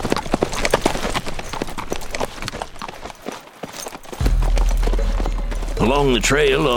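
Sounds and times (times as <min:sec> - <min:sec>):
horse hooves clip-clopping along a trail: 0:00.0 - 0:06.7
low rumbling: 0:04.2 - 0:06.7
speech: 0:05.8 - 0:06.7.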